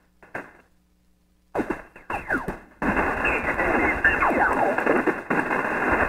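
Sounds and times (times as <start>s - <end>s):
broadband radio static on the 40-meter shortwave band: 1.6s - 6.0s.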